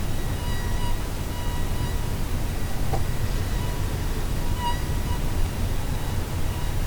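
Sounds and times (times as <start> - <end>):
mosquito whine: 0.1 - 6.7.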